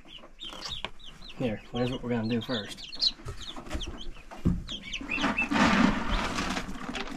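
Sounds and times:
chickens clucking and chattering: 0.0s - 7.1s
speech: 1.4s - 3.0s
busy rustling background: 2.8s - 7.1s.

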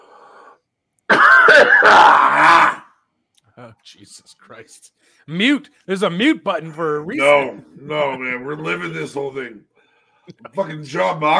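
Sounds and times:
loud throaty raspy cough: 1.1s - 2.8s
speech: 1.6s - 2.6s, 3.8s - 9.7s, 10.3s - 11.3s.

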